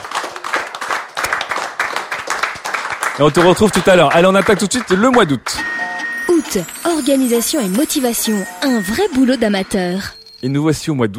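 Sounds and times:
audience applauding at a live event: 0.0 - 5.6
speech: 3.2 - 5.8, 6.5 - 11.1.

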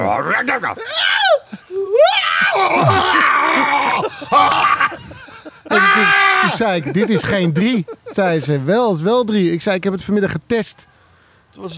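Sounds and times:
speech: 0.0 - 1.0, 1.7 - 5.1, 5.7 - 11.0, 11.6 - 11.7
person acting out a high-pitched scream turning into a roaring groan: 0.5 - 6.7
laughter-like vocal bursts: 3.7 - 8.6.

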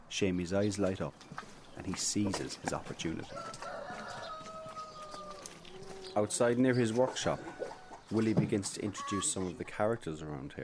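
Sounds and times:
speech: 0.1 - 3.8, 6.2 - 10.6
farmyard birds: 0.2 - 10.6
hen clucking before laying an egg: 3.0 - 9.9.

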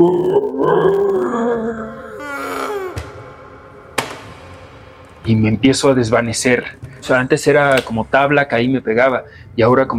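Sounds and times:
speech: 0.0 - 2.1, 5.2 - 9.9
voice imitating a seizure's strained groaning inward cry: 0.0 - 3.6
breathy rasping gasp: 1.2 - 3.1.

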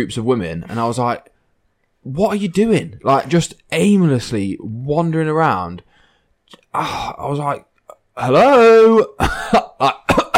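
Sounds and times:
speech: 0.0 - 1.3, 2.0 - 5.9, 6.5 - 10.2
loud harsh coughs: 9.2 - 10.3.

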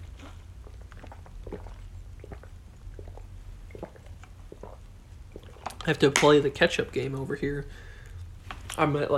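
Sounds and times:
person sipping water from a bottle: 0.0 - 5.8
steady low hum: 0.0 - 9.1
speech: 5.9 - 7.9, 8.8 - 9.1.

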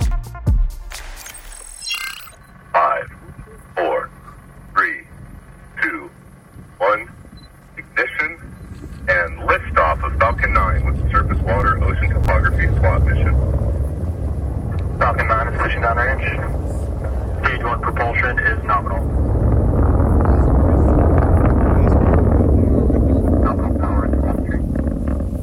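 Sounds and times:
voices: 2.0 - 25.4
rocket launching a satellite in the United States on a cold night: 6.8 - 25.4.

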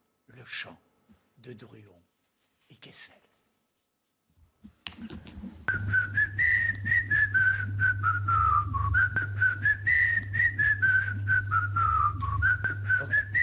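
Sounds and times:
speech: 0.4 - 2.1, 2.7 - 3.2, 5.0 - 5.5
low sustained hum: 5.7 - 13.4
whistled song melody: 5.7 - 13.4.

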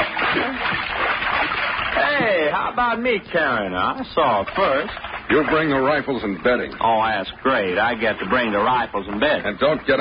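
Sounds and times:
water splashing as someone climbs over the side of a boat: 0.0 - 9.9
speech: 2.7 - 9.9.

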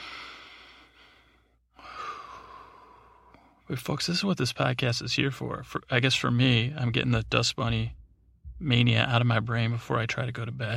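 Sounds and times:
nasal breathing: 0.0 - 3.7
speech: 3.7 - 8.0, 8.6 - 10.7.

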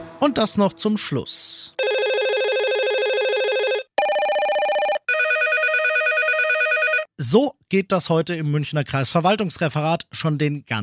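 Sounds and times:
speech: 0.2 - 1.8, 7.2 - 10.8
telephone ringing with a warbling electronic trill: 1.8 - 7.1.

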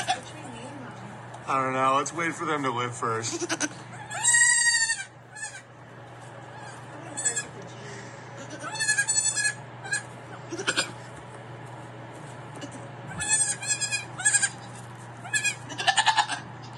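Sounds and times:
goats bleating: 0.0 - 0.3, 3.2 - 5.7, 6.5 - 7.6, 8.4 - 11.1, 12.5 - 16.5
speech: 1.5 - 4.0.

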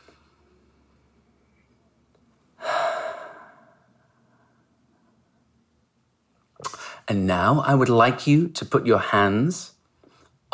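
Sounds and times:
person breathing out loudly through the mouth during a guided breathing exercise: 2.6 - 4.2
speech: 7.1 - 9.8.

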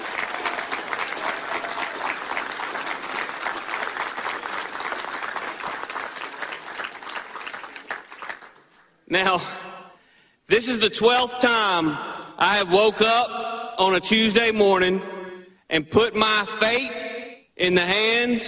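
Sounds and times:
sustained applause from a large audience: 0.0 - 9.0
speech: 9.1 - 9.6, 10.5 - 15.1, 15.7 - 17.0, 17.6 - 18.4.

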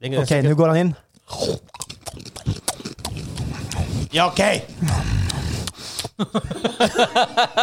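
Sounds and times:
speech: 0.0 - 1.7, 4.1 - 5.2, 6.2 - 7.6
man chewing food loudly: 1.1 - 6.2
laughter: 6.2 - 7.6.

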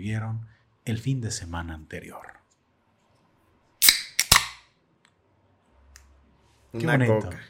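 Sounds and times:
speech: 0.0 - 2.4, 6.7 - 7.4
soda can being opened: 3.8 - 4.6.

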